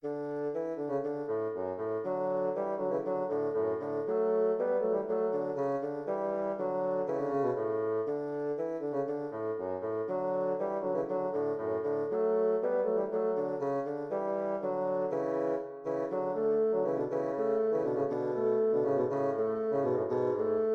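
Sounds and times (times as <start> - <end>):
allegro bassoon duet: 0.0 - 20.7.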